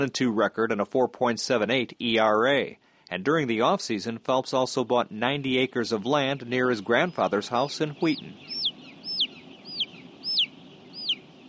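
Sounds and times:
speech: 0.0s - 8.6s
huge flock of chickens clucking in chicken house: 5.6s - 11.4s
sharp high chicken squawks: 7.1s - 11.4s.

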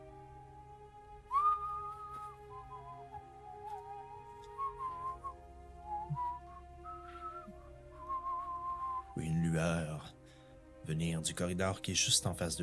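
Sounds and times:
person whistling a simple melodic line: 1.3s - 9.3s
speech: 9.2s - 9.9s, 10.9s - 12.6s.

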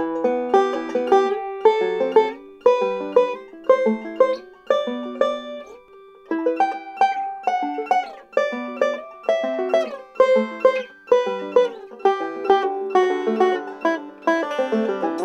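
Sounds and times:
banjo chord voicings on the first, third and fourth strings climbing up the neck: 0.0s - 15.2s.

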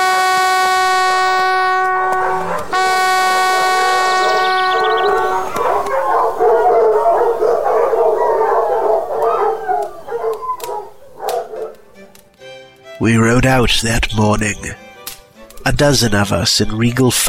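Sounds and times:
hunting horn blasts at a morning hunt on an estate: 0.0s - 7.6s
pack of tracking hounds howling and baying: 0.9s - 12.3s
speech: 13.0s - 14.8s, 15.7s - 17.2s.

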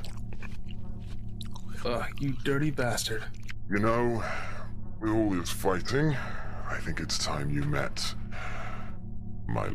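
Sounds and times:
wet chewing on a piece of arm flesh: 0.0s - 3.7s
speech: 1.8s - 8.2s, 9.5s - 9.7s.

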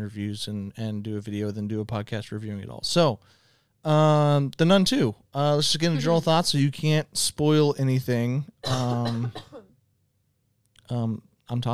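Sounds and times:
speech: 0.0s - 9.5s, 10.9s - 11.7s
throaty cough: 8.6s - 9.8s.

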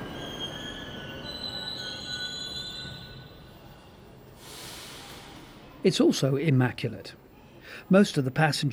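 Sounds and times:
high-pitched metro train wheel squeals: 0.0s - 4.0s
metro train rolling along underground rails: 0.0s - 6.5s
speech: 5.8s - 8.7s.

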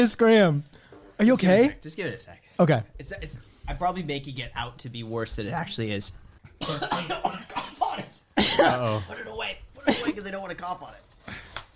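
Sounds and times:
speech: 0.0s - 11.4s
person coughing after eating: 6.6s - 9.0s, 9.8s - 10.2s.

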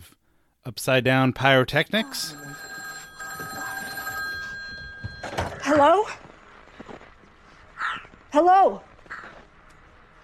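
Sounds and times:
speech: 0.7s - 2.6s, 5.6s - 6.2s, 8.3s - 8.9s
telephone ringing: 2.0s - 6.0s.

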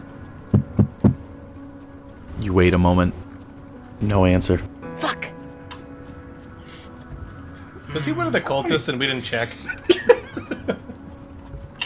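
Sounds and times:
firm knocking on a door: 0.5s - 1.2s
speech: 2.4s - 3.2s, 4.0s - 5.3s, 7.9s - 9.8s
laughter: 7.8s - 11.1s.

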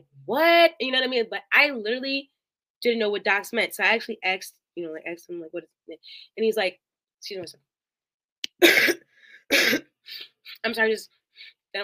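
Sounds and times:
speech: 0.2s - 7.7s, 8.6s - 11.8s
harsh cough muffled into a shirt: 8.6s - 9.9s
faint wheezy breath: 9.1s - 10.5s.

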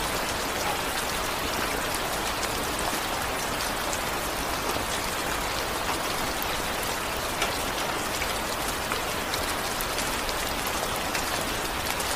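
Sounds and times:
rain: 0.0s - 12.1s.

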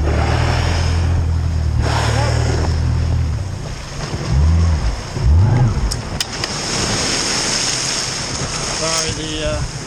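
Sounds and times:
low boat motor drone: 0.0s - 6.4s
churning rising water rushing by a boat during whale tagging: 0.0s - 9.8s.

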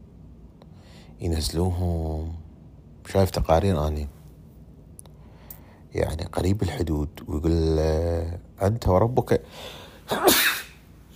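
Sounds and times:
speech: 1.0s - 2.4s, 3.1s - 4.2s, 5.9s - 10.6s
sneeze: 10.1s - 10.8s.

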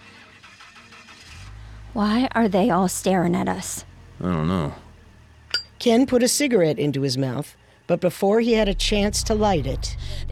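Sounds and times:
Silverado pickup truck engine cranking and starting: 0.0s - 4.2s, 8.6s - 10.3s
speech: 2.0s - 4.8s, 5.8s - 10.3s.

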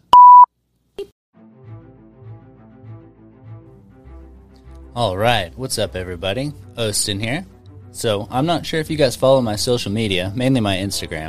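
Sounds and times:
electronic beep marking a break: 0.2s - 0.5s
soft rhythmic music: 1.4s - 11.2s
speech: 5.0s - 11.2s.

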